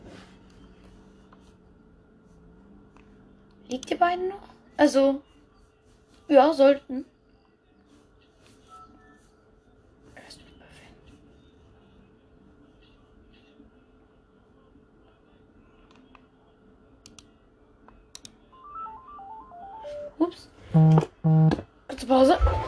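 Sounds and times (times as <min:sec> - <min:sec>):
low hum: 0:00.0 - 0:22.6
speech: 0:03.7 - 0:05.3, 0:06.3 - 0:07.1
phone ringtone melody: 0:18.6 - 0:21.5.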